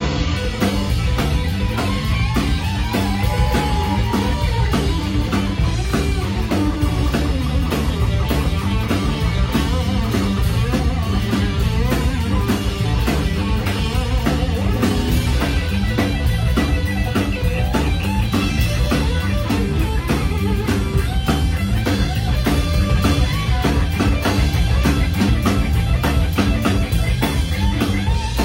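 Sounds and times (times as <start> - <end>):
dazed guitar solo: 0.0 - 28.4.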